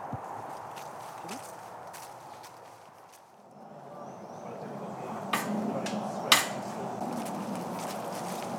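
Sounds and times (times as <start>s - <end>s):
footsteps squelching through a muddy patch by a field gate: 0.0s - 3.4s, 7.0s - 8.5s
low outdoor noise: 0.0s - 8.5s
sharp knocks: 5.3s - 6.6s.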